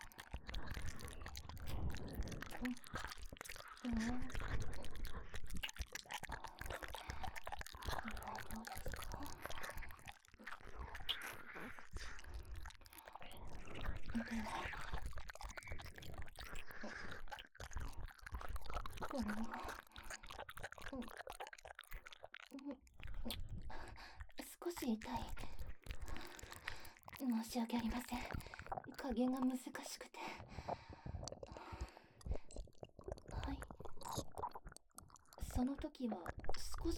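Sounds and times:
wet crunchy chewing and biting mouth sounds: 0.0 - 36.9
speech: 2.6 - 3.2, 24.9 - 25.4, 27.2 - 30.1, 35.6 - 36.9.

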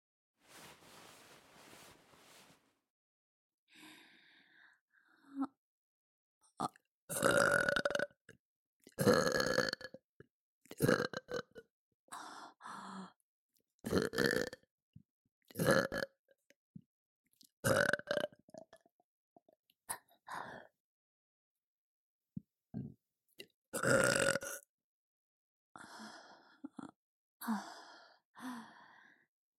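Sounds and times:
soft breathy noise: 0.4 - 2.7
long loud voiced croaking burps: 6.6 - 8.1, 9.0 - 9.9, 10.8 - 11.4, 13.9 - 14.6, 15.6 - 16.1, 17.6 - 18.4, 23.8 - 24.6.

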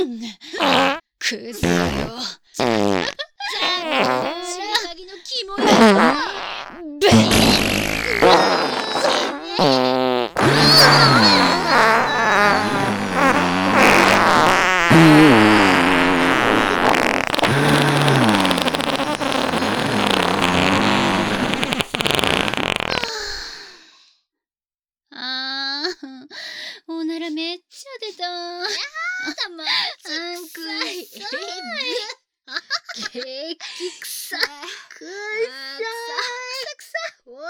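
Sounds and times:
speech: 0.0 - 3.1
farting: 0.6 - 1.0, 1.6 - 4.9, 5.6 - 23.3.

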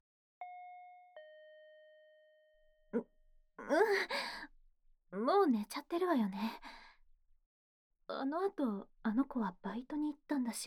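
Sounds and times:
two-tone intercom doorbell chime: 0.4 - 2.9
speech: 2.9 - 4.5, 5.1 - 6.8, 8.1 - 10.6.

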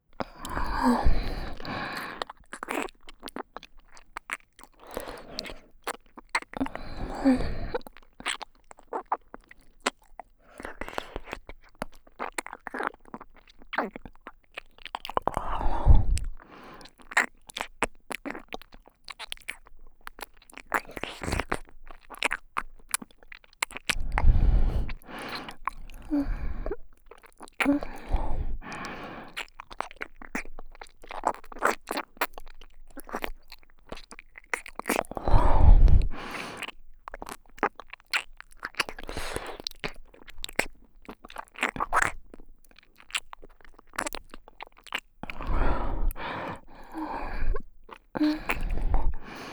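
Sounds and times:
close ear licking in the right ear: 0.3 - 49.5
erotic breathy sighs: 0.4 - 2.2, 6.7 - 7.8, 24.0 - 26.8, 27.7 - 29.4, 35.2 - 36.4, 45.4 - 47.6, 48.2 - 49.5.

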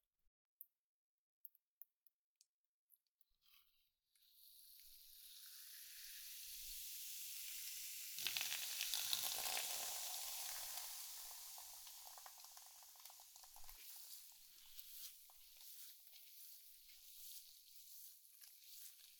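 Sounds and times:
carbonated water poured over hair as a final rinse, fizzing: 4.6 - 19.1.

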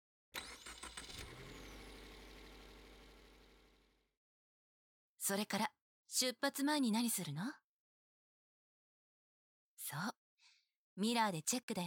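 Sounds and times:
car engine cranking, starting and idling: 0.4 - 3.9
speech: 5.3 - 7.6, 9.8 - 10.2, 11.0 - 11.8.

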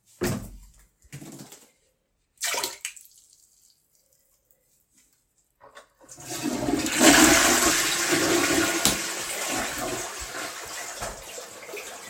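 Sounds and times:
toilet flushing: 6.1 - 12.0.

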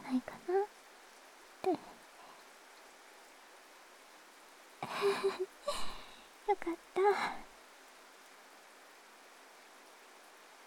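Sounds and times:
steady rain falling: 0.0 - 10.6.

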